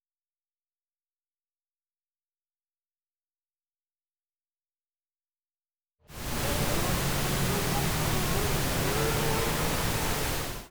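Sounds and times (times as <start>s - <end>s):
engine revving high: 6.1s - 10.7s.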